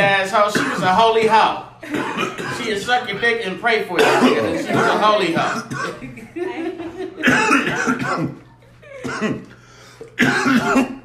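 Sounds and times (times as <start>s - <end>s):
speech: 0.2s - 6.6s, 9.0s - 9.5s, 10.2s - 11.0s
person coughing and choking after smoking: 0.5s - 1.0s, 1.9s - 2.8s, 4.0s - 6.0s, 7.2s - 8.4s, 9.0s - 11.0s
laughter: 4.1s - 9.5s.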